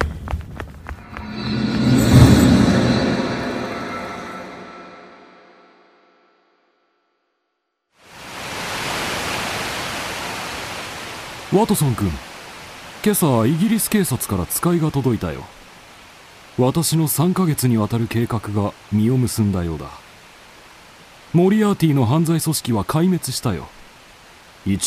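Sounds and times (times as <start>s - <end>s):
loud resonant swell: 1.0s - 6.4s
roar of the large Reichenbach Falls waterfall: 8.0s - 24.8s
speech: 11.6s - 12.2s, 13.0s - 15.6s, 16.6s - 20.0s, 21.3s - 23.8s, 24.6s - 24.8s.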